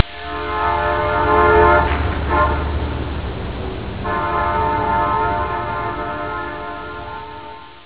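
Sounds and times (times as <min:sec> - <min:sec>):
train at night: 0:00.0 - 0:07.8.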